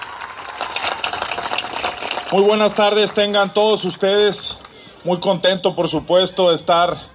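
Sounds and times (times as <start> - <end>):
audience applause: 0.0 - 3.9
speech: 2.3 - 7.1.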